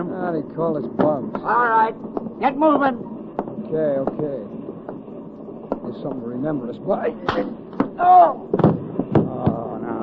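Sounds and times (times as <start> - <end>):
speech: 0.2 - 4.6, 5.8 - 8.7
heavy dull thuds of punches in a scuffle: 7.3 - 9.6.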